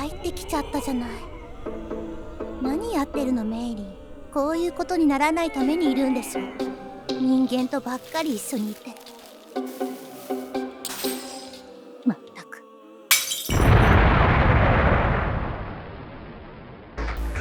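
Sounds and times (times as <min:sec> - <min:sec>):
harmonic vocal sounds: 0:00.0 - 0:14.1
speech: 0:00.5 - 0:01.8, 0:02.6 - 0:09.0
shattering, breaking glass: 0:09.7 - 0:11.8, 0:13.1 - 0:14.0
sustained rumbling crash: 0:13.3 - 0:17.3
explosion in a city: 0:13.5 - 0:17.3.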